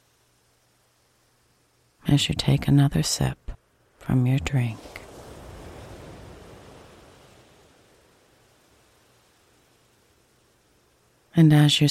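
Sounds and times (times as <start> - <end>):
speech: 2.1 - 3.4, 4.1 - 4.9, 11.4 - 11.8
gentle ocean waves washing onto a shore: 3.6 - 11.4.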